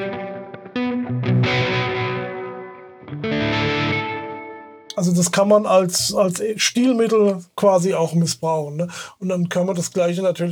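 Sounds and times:
heavily distorted electric guitar chords through a reverb-soaked amp: 0.0s - 4.9s
speech: 5.0s - 10.4s.

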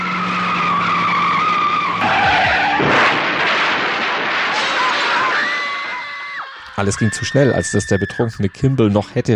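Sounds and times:
Mazda RX-7 sports car roaring at high speed into a cul-de-sac: 0.0s - 3.5s
Mazda RX-7 tires squealing in a long skid: 0.0s - 8.9s
speech: 6.8s - 9.3s.

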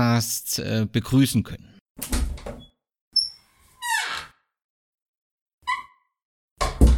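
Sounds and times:
speech: 0.0s - 2.2s
creaking door opening: 2.0s - 4.5s, 5.6s - 6.1s.

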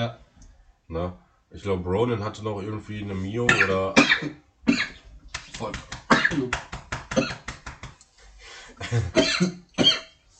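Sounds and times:
speech: 0.0s - 0.2s, 0.9s - 4.4s, 5.6s - 7.4s, 8.8s - 10.0s
person coughing hard after a drink went down the wrong pipe: 3.5s - 5.0s, 6.1s - 6.5s, 7.2s - 7.5s, 8.9s - 10.1s.

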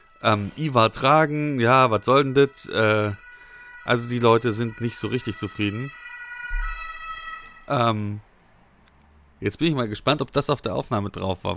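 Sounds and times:
siren outside: 0.0s - 8.6s
speech: 0.2s - 3.2s, 3.9s - 6.0s, 7.7s - 8.3s, 9.4s - 11.5s.

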